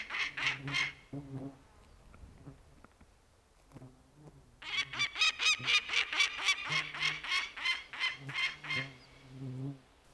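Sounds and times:
adult female peregrine falcon alarm-calling at nest on a fell cliff in Inari, Finland: 0.0 - 1.0, 4.6 - 9.0.

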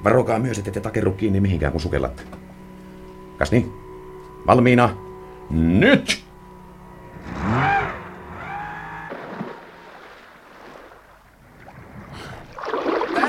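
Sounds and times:
speech: 0.0 - 2.4, 3.4 - 3.8, 4.4 - 6.2
water churning as a boat capsizes: 7.0 - 13.2.

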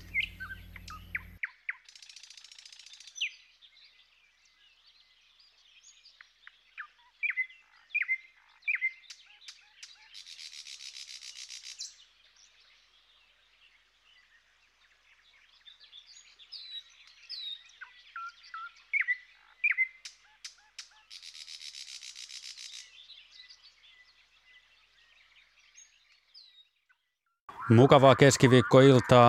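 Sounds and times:
thrush nightingale singing: 0.0 - 29.2
speech: 27.7 - 29.2.

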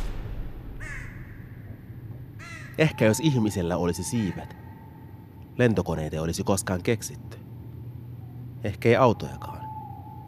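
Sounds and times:
low rushing noise: 0.0 - 5.9
crow-like bird cawing: 0.7 - 6.8, 7.4 - 10.2
speech: 2.8 - 4.6, 5.6 - 7.4, 8.6 - 9.6.

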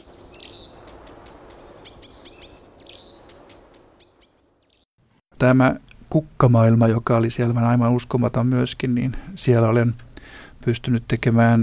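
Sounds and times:
steady hiss: 0.0 - 4.1, 5.4 - 11.6
Blyth's reed warbler singing: 0.0 - 4.9
speech: 5.4 - 11.6.

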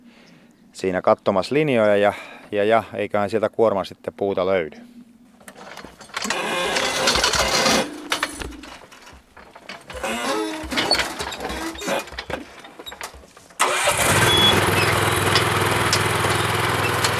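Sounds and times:
speech: 0.8 - 4.9
homemade forestry machine engine starting and idling in a forest: 5.5 - 17.1.

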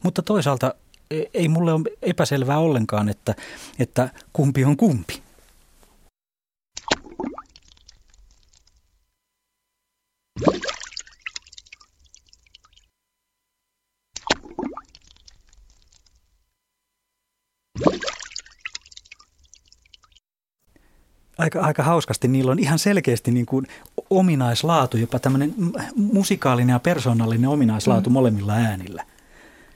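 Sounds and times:
speech: 0.0 - 5.3, 21.4 - 29.1
splashy water plop: 6.8 - 8.8, 10.4 - 12.8, 14.2 - 16.2, 17.8 - 20.2.

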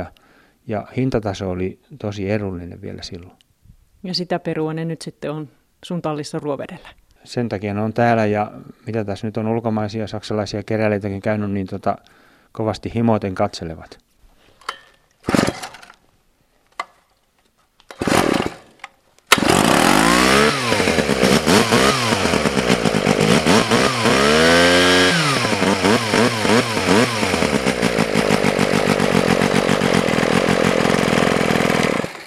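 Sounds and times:
speech: 0.0 - 3.4, 4.0 - 14.0
Sachs-Dolmar KMS4 Wankel-engine chainsaw pull-start bursts: 15.2 - 16.0, 17.9 - 32.2.

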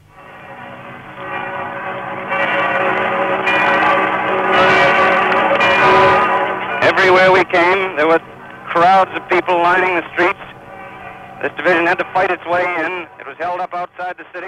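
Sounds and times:
bells of Notre Dame and other Paris churches pealing: 0.0 - 14.4
Canadian commentator talking rapidly: 6.8 - 10.5, 11.4 - 14.4
speech: 7.5 - 10.4, 11.4 - 14.4.

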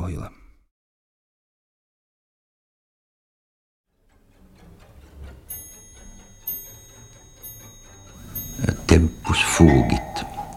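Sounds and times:
low sustained instrumental tones: 4.2 - 10.5
clocks ticking: 4.4 - 10.5
bright chime-like strikes: 5.5 - 10.5
speech: 9.0 - 10.1.

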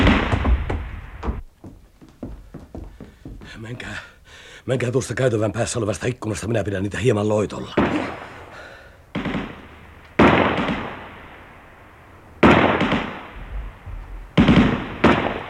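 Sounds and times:
gunshots during a shootout: 0.0 - 1.2, 7.7 - 11.6, 12.4 - 15.4
speech: 3.5 - 8.1.

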